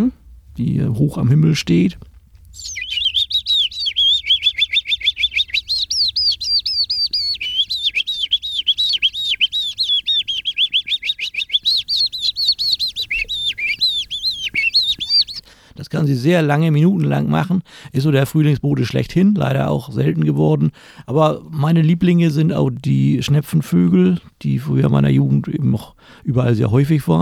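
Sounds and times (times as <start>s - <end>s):
speech: 0.0s - 2.8s, 16.0s - 27.1s
person whistling an imitation of Eurasian skylark song: 2.6s - 15.4s.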